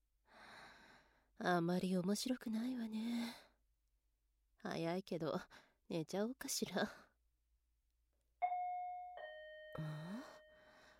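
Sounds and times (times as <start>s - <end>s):
speech: 1.4s - 3.5s, 4.6s - 7.1s, 9.8s - 10.4s
two-note ding-dong intercom doorbell chime: 8.4s - 10.9s.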